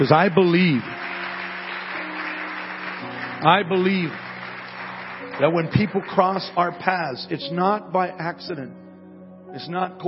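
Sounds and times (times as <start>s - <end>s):
speech: 0.0s - 1.0s, 3.4s - 4.2s, 5.4s - 8.8s, 9.5s - 10.0s
audience clapping in a church: 0.0s - 7.0s.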